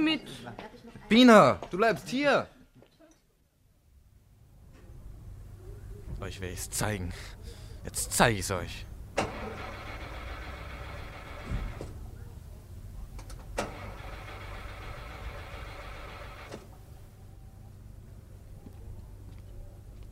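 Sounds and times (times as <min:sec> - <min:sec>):
speech: 0:00.0 - 0:02.5, 0:06.2 - 0:09.7
car engine cranking and starting: 0:09.1 - 0:12.3, 0:13.2 - 0:17.0.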